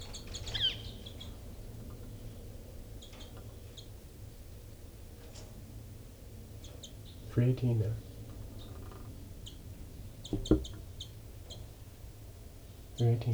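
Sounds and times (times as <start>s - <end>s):
caged birds chirping: 0.0s - 4.0s, 6.6s - 11.8s
speech: 7.4s - 8.1s, 13.0s - 13.3s.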